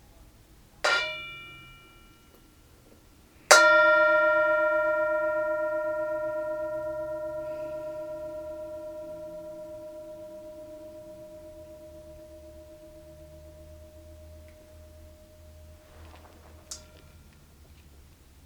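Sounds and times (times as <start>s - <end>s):
mindfulness bell ringing: 0.9s - 2.3s, 3.5s - 17.3s.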